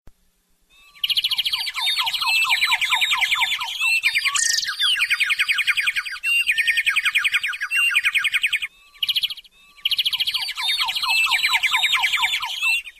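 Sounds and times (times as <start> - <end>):
birds chirping: 0.7 - 12.9.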